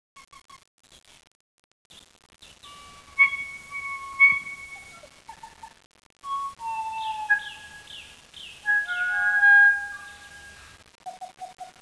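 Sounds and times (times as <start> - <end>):
kokako bird: 2.4 - 11.7.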